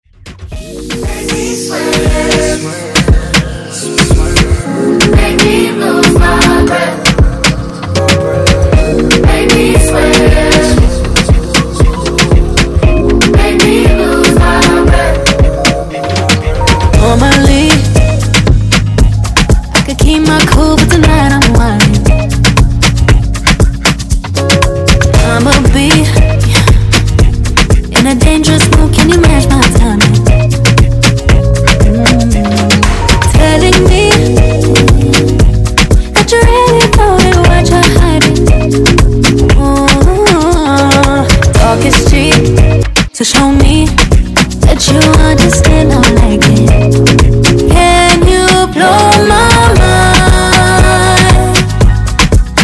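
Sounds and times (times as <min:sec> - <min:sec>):
reggaeton beat: 0:00.2 - 0:52.6.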